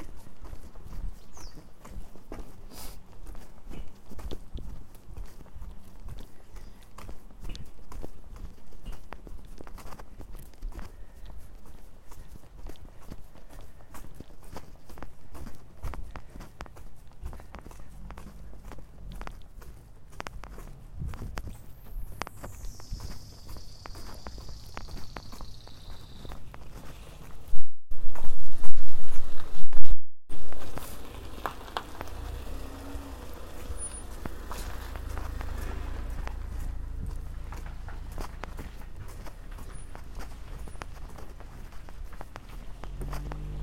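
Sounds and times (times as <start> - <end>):
footsteps crunching outdoors: 0.0 - 29.7, 30.3 - 43.6
low rumbling background: 30.6 - 43.6.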